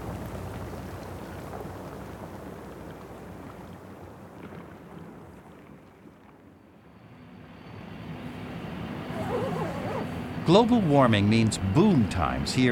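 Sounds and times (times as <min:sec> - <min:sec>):
melting glacier ice at Ilulissat Greenland snapping and popping: 0:00.0 - 0:06.7
speech: 0:10.5 - 0:12.7.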